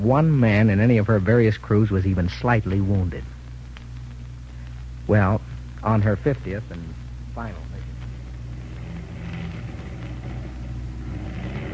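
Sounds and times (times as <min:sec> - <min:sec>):
speech: 0:00.0 - 0:03.3, 0:05.1 - 0:07.7
aircraft engine of a damaged plane droning during crash landing approach: 0:04.6 - 0:11.7.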